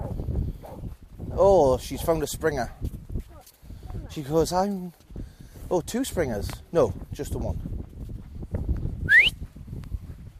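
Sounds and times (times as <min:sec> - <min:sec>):
low outdoor wind rumble: 0:00.0 - 0:10.3
speech: 0:01.4 - 0:02.9, 0:04.1 - 0:05.0, 0:05.7 - 0:07.7
short sharp whistle to recall a dog: 0:09.0 - 0:09.4.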